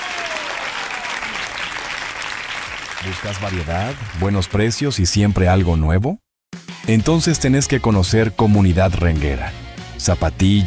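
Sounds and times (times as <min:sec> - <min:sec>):
crowd applauding: 0:00.0 - 0:05.7
speech: 0:03.0 - 0:06.2, 0:06.9 - 0:10.6.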